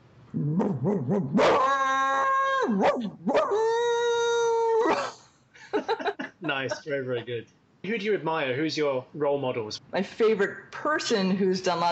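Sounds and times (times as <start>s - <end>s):
speech: 0.3s - 1.9s, 2.6s - 3.8s, 6.0s - 11.9s
person imitating a hound dog howling: 0.4s - 5.1s
laughter: 5.6s - 6.8s.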